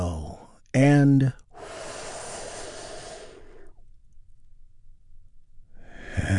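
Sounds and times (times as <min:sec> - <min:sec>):
speech: 0:00.7 - 0:01.4
deep breath during a guided breathing exercise: 0:01.5 - 0:03.8, 0:05.7 - 0:06.3.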